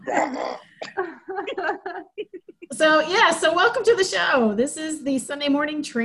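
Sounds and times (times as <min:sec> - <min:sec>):
loud rough throaty burp after taking a drink: 0:00.0 - 0:00.9
speech: 0:00.1 - 0:06.0
laughter: 0:01.0 - 0:03.1.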